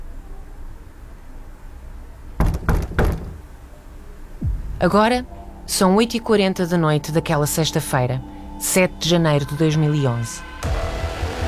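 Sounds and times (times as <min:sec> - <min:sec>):
hotel room door opening and shutting: 0:02.4 - 0:03.5
speech: 0:04.8 - 0:10.8.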